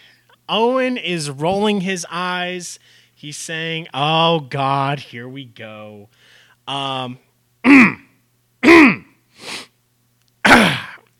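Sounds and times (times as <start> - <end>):
speech: 0.5 - 8.0
throat clearing with harsh voiced grunts and rasps: 7.6 - 9.2, 10.4 - 11.1.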